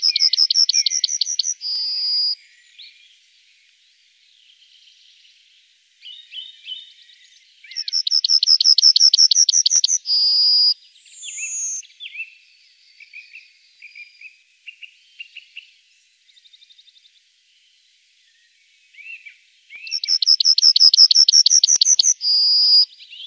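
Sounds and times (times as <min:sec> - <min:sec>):
yellowhammer song: 0:00.0 - 0:23.2.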